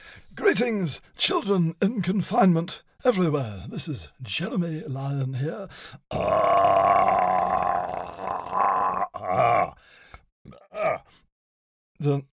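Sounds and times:
speech: 0:00.6 - 0:10.0, 0:12.0 - 0:12.3
voice imitating a lion's roar with growls and grunts: 0:06.1 - 0:09.8.

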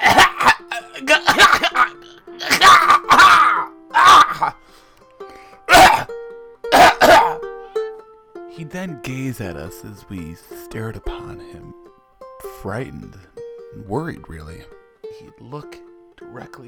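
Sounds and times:
heavy hacking coughing: 0:00.0 - 0:04.6, 0:05.7 - 0:06.1, 0:06.7 - 0:07.5
speech: 0:08.8 - 0:11.9, 0:12.6 - 0:16.6.

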